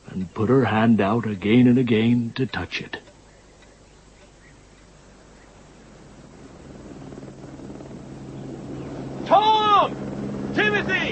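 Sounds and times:
speech: 0.2 - 3.0
helicopter rotor throb overhead: 4.9 - 11.1.

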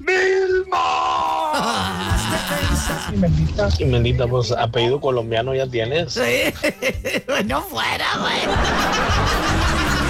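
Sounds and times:
man imitating a loud drawn-out cartoon caveman yell: 0.0 - 3.1
laughter: 1.3 - 3.3, 6.2 - 10.0
speech: 2.8 - 9.4.

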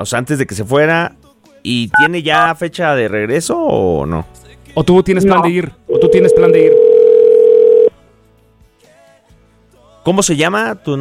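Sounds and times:
speech: 0.0 - 6.8, 10.0 - 11.0
telephone dial tone as a call is placed: 5.9 - 7.9.

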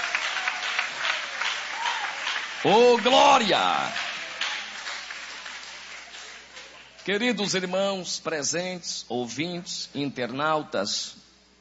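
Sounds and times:
church congregation applauding: 0.0 - 7.4
speech: 2.6 - 4.0, 7.1 - 11.2.

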